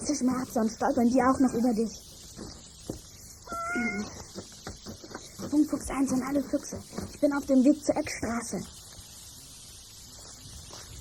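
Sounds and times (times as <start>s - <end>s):
speech: 0.1s - 2.6s, 5.5s - 8.8s
cat meowing: 3.4s - 4.2s.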